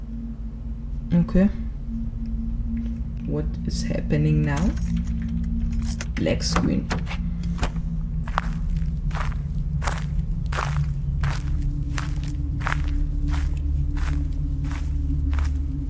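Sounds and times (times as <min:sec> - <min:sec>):
low rumbling drone: 0:00.0 - 0:15.8
speech: 0:01.1 - 0:01.6, 0:03.3 - 0:05.1, 0:05.9 - 0:07.2
footsteps in a horror video game: 0:07.5 - 0:15.8.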